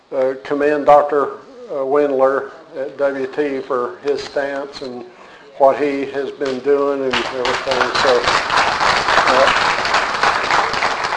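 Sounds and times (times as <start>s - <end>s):
speech: 0.1s - 8.4s
audience applause: 7.1s - 11.1s.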